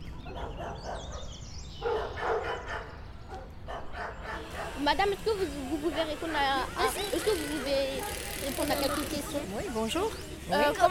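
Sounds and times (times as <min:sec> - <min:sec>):
dogs barking: 0:00.1 - 0:05.0, 0:05.8 - 0:09.4
speech: 0:04.8 - 0:10.8.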